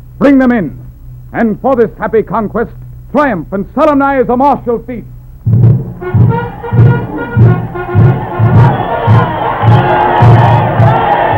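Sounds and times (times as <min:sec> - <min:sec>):
speech: 0:00.2 - 0:05.1
large crowd of spectators cheering and shouting approval: 0:06.4 - 0:11.3.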